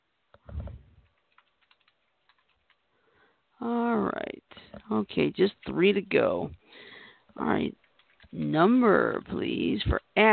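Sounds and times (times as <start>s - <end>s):
faint typing on a computer keyboard during a word game: 1.0s - 2.8s, 7.8s - 8.5s
speech: 4.9s - 6.6s, 7.4s - 10.3s.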